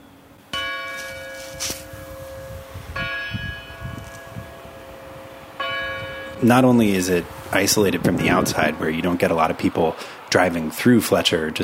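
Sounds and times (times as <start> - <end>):
church bells ringing in a town center: 0.5 - 7.1
speech: 6.4 - 11.6.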